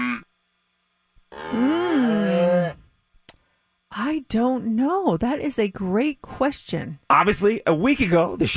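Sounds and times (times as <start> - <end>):
long drawn-out cow moo: 1.3 - 2.8
speech: 4.3 - 8.5.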